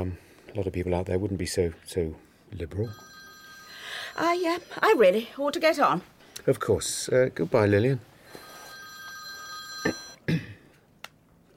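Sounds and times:
speech: 0.0 - 3.2, 4.1 - 8.1
telephone ringing with a bright electronic tone: 2.8 - 5.8, 8.2 - 10.2.

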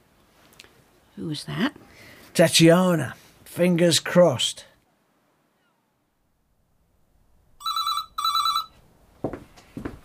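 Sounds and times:
speech: 1.2 - 4.7
telephone ringing with a bright buzzing electronic trill: 7.6 - 8.8.

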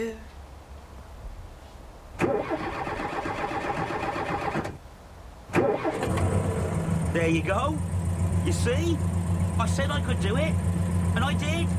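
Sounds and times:
car engine cranking, turning over and running: 2.2 - 4.8, 5.5 - 11.7
speech: 7.2 - 11.7.

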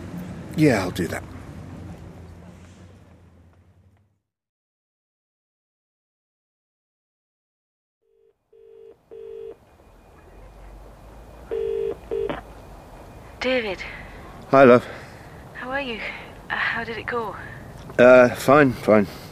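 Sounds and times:
speech: 0.6 - 1.4, 13.6 - 15.0, 15.8 - 16.2, 16.8 - 19.2
phone keypad beeps while dialing a number: 11.5 - 12.4.

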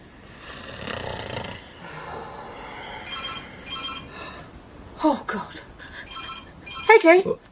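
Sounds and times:
man snoring loudly in rough rasping breaths: 0.2 - 3.7
faint electronic phone ringing: 3.0 - 4.2, 6.1 - 7.1
speech: 5.0 - 5.7, 6.9 - 7.5.

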